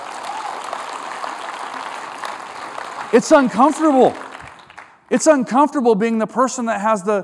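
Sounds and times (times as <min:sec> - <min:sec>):
large audience applauding: 0:00.0 - 0:05.1
speech: 0:03.1 - 0:04.2, 0:05.1 - 0:07.2.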